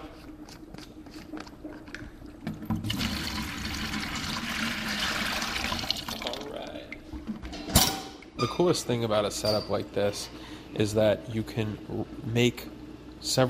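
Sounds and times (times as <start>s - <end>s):
yeast samples pouring into large beer fermenter: 2.6s - 7.0s
speech: 8.4s - 13.4s.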